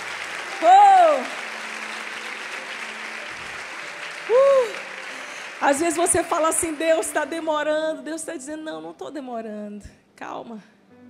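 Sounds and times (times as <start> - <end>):
large audience applauding during a sermon: 0.0 - 7.8
rising-and-falling cheers or whistles: 0.5 - 1.5, 4.2 - 5.0
speech: 0.6 - 1.4, 5.6 - 10.8.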